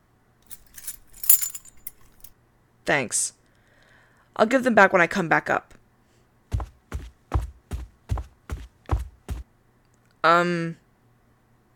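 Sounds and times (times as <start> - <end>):
bunch of storage-room closet keys jangling as they are handed over: 0.5 - 2.3
speech: 2.9 - 3.4, 4.4 - 5.8, 10.2 - 10.8.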